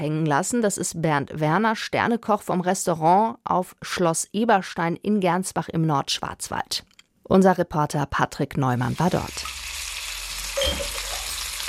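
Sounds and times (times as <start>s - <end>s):
speech: 0.0s - 9.6s
food sizzling and frying in a busy restaurant kitchen at a castle in the northern Black Forest: 8.7s - 11.6s.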